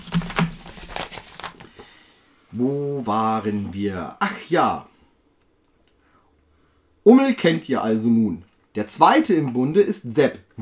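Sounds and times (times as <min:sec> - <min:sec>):
paper rustling and crinkling: 0:00.0 - 0:01.8
speech: 0:02.6 - 0:04.9, 0:07.1 - 0:10.6.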